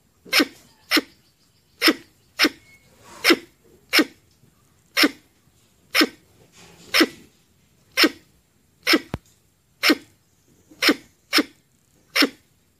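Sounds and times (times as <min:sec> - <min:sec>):
red squirrel giving harsh barking chucks: 0:00.2 - 0:04.2, 0:04.9 - 0:05.3, 0:05.9 - 0:06.2, 0:06.9 - 0:07.2, 0:07.9 - 0:09.2, 0:09.8 - 0:10.1, 0:10.7 - 0:12.5.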